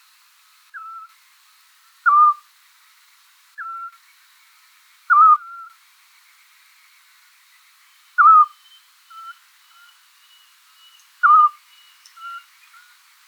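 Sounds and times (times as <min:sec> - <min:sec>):
Eurasian scops owl giving short clear whistled notes: 0:02.1 - 0:02.4, 0:03.6 - 0:04.0, 0:05.1 - 0:05.7, 0:08.2 - 0:10.0, 0:10.8 - 0:11.6.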